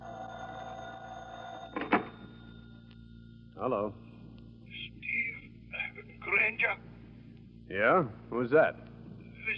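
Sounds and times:
telephone giving a short shrill ring: 0.0 - 3.0
steady low electrical hum: 0.0 - 9.5
speech: 3.6 - 4.0, 7.7 - 8.9.

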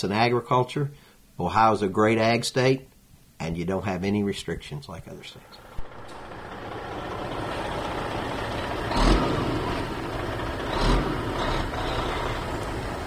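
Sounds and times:
speech: 0.0 - 5.7
tractor engine droning while working a field during planting: 5.6 - 13.0.

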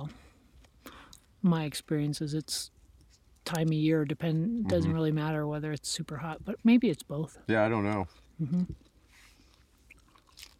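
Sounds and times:
speech: 1.4 - 2.8, 3.5 - 8.9
voice murmuring: 4.6 - 5.0
person chewing crunchy food: 8.6 - 10.5.

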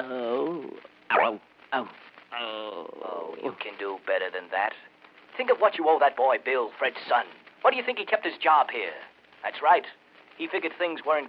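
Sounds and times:
man imitating a lion's growl: 0.0 - 3.3
speech: 3.6 - 11.2.

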